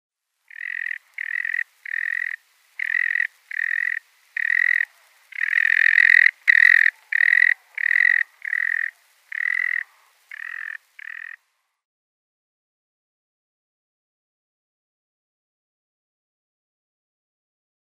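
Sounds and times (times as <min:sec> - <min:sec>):
male sanderling display flight calls: 0:00.5 - 0:11.4.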